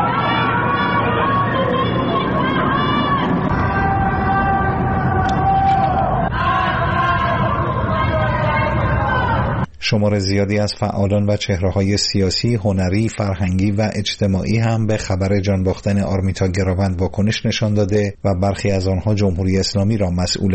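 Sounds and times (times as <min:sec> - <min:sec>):
large crowd chanting anti-government slogans at night in Tehran, Karaj and Shiraz, Iran: 0:00.0 - 0:09.7
speech: 0:09.9 - 0:20.5.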